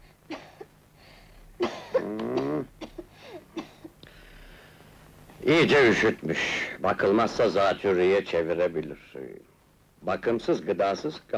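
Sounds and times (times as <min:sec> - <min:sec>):
faint low hum: 0:00.0 - 0:11.3
child coughing during a doctor's examination: 0:01.6 - 0:03.9
speech: 0:05.5 - 0:11.3.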